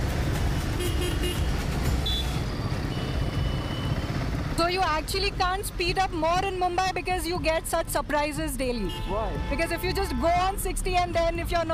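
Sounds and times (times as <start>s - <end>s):
dense street traffic in Mumbai rumbling: 0.0s - 11.7s
short horn toots: 0.7s - 4.0s, 8.7s - 10.7s
speech: 4.6s - 11.7s.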